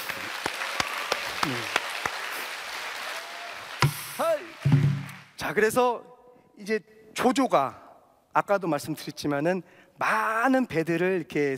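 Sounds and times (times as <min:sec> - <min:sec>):
audience applause with sparse scattered claps: 0:00.0 - 0:05.4
speech: 0:05.5 - 0:07.8, 0:08.4 - 0:11.5.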